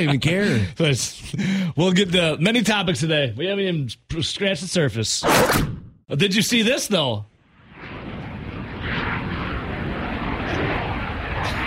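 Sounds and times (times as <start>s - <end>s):
speech: 0.0s - 7.3s
B-1 bomber jet flying overhead in a flyover for a baseball home opener: 7.5s - 11.6s.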